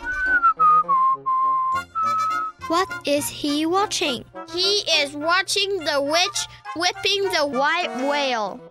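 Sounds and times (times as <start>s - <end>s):
person whistling a short melodic run: 0.0s - 2.6s
speech: 2.7s - 8.6s.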